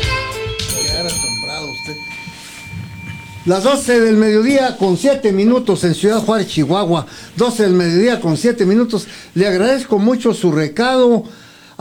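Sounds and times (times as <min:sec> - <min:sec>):
bell ringing: 0:00.6 - 0:06.6
speech: 0:03.4 - 0:11.7.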